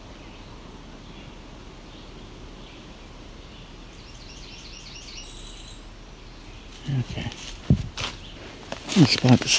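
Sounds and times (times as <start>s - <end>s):
bird chirping in leafy forest: 0.0s - 9.5s
rustling leaves: 0.0s - 9.5s
wind rushing: 7.0s - 8.4s
speech: 9.0s - 9.5s.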